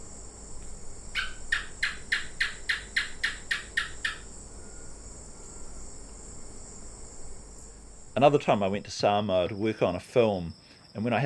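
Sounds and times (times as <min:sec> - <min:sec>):
gecko in Papua New Guinea chirping: 0:00.0 - 0:06.0
insect hum: 0:00.0 - 0:11.2
speech: 0:08.2 - 0:11.2.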